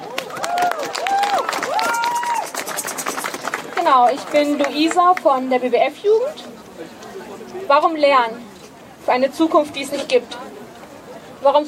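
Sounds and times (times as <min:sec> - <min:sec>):
audience cheers and whoops: 0:00.0 - 0:02.6
audience applauding with dense overlapping clapping: 0:00.0 - 0:05.4
speech: 0:03.9 - 0:06.5, 0:07.7 - 0:08.4, 0:09.0 - 0:10.4, 0:11.4 - 0:11.6.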